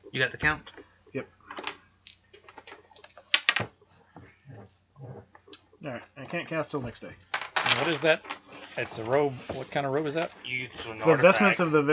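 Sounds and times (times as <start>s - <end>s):
speech: 0.1s - 1.4s, 5.8s - 11.9s
dice clattering across a hard surface: 7.3s - 8.4s.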